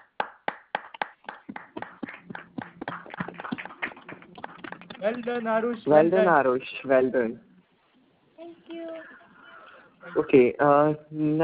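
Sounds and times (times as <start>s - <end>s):
small group applauding a participant: 0.2s - 5.5s
speech: 5.0s - 7.5s, 10.1s - 11.4s.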